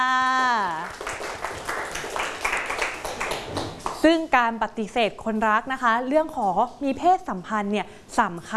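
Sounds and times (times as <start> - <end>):
classroom group of students applauding: 0.4 - 4.0
speech: 4.0 - 8.5.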